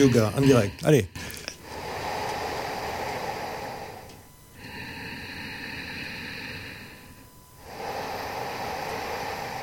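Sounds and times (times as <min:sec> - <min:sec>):
speech: 0:00.0 - 0:01.4
slow deep yogic breathing through the nose: 0:00.0 - 0:09.6.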